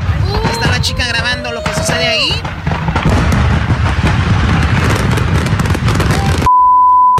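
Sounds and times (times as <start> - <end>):
fireworks crackling, popping and booming near a burning house: 0.0 - 6.5
steady electronic beep: 6.5 - 7.1.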